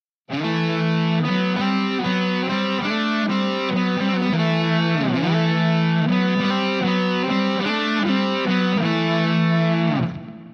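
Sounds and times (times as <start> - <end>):
distorted electric guitar playing a two-part harmony melody in fourths: 0.3 - 10.5.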